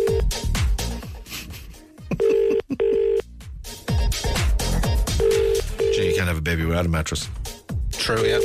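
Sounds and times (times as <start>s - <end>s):
phone line ringing on an outgoing call: 0.0s - 0.3s, 2.2s - 3.2s, 5.2s - 6.2s, 8.2s - 8.4s
busy rhythmic music with thumping beats: 0.0s - 6.4s, 7.0s - 8.4s
speech: 6.4s - 8.4s.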